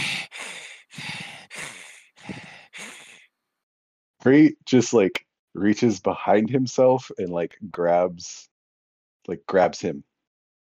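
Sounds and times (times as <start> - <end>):
voice imitating heavy breathing: 0.0 - 3.2
speech: 4.2 - 8.5, 9.3 - 10.1.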